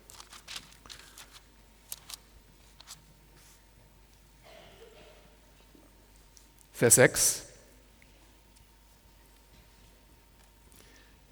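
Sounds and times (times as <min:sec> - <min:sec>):
thin Bible pages being turned and handled: 0:00.0 - 0:03.6
soft hiss of noise: 0:00.6 - 0:09.5
speech: 0:06.8 - 0:07.4.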